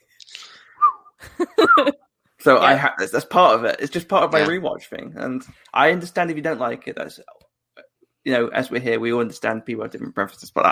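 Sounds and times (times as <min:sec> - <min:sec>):
person whistling along to a show's theme tune: 0:00.8 - 0:01.9
speech: 0:01.4 - 0:07.4, 0:08.2 - 0:10.6.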